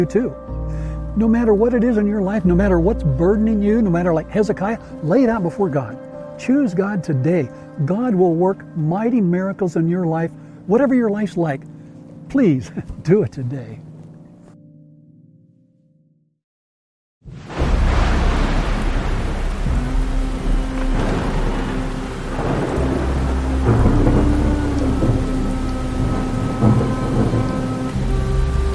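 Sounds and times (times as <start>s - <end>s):
steady heavy rain in a thunderstorm: 0.0s - 9.3s, 17.2s - 28.7s
speech: 0.0s - 11.7s, 12.3s - 13.8s
deep rolling thunder in a thunderstorm: 17.3s - 28.7s.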